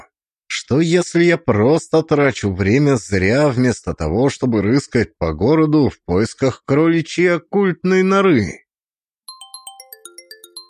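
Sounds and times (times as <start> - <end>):
speech: 0.7 - 8.6
electronic phone ringtone in an office: 9.3 - 10.6.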